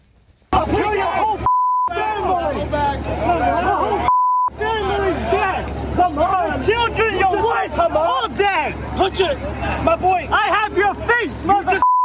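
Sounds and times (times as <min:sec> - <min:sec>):
loud crowd clamoring and shouting at a protest: 0:00.5 - 0:11.8
speech: 0:07.6 - 0:11.8
steady high-pitched electronic beep: 0:11.8 - 0:12.0.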